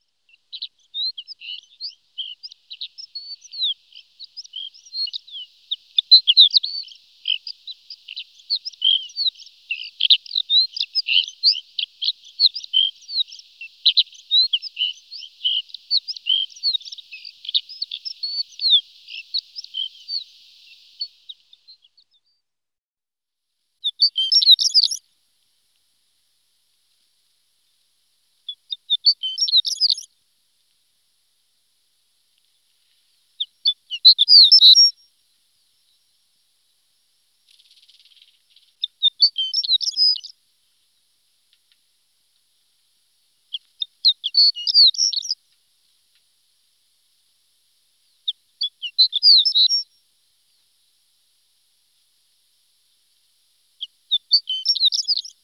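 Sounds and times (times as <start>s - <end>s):
shore lark calling: 0.3s - 21.6s, 23.8s - 25.0s, 28.5s - 30.1s, 33.4s - 35.0s, 37.6s - 40.4s, 43.5s - 45.4s, 48.2s - 49.9s, 53.8s - 55.4s.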